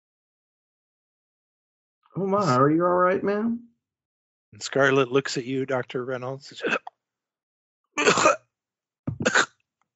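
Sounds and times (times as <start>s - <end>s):
speech: 2.1s - 3.7s, 4.5s - 6.9s
voice imitating a woman's wet sputtering cough coughing up water: 6.6s - 6.9s, 8.0s - 8.4s, 9.1s - 9.9s.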